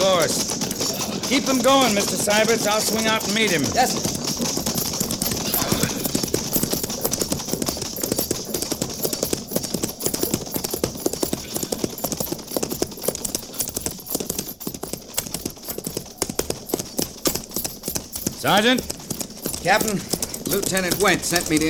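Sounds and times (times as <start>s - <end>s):
horse hooves galloping: 0.0s - 21.6s
speech: 1.3s - 4.6s, 18.5s - 18.9s, 19.6s - 21.6s.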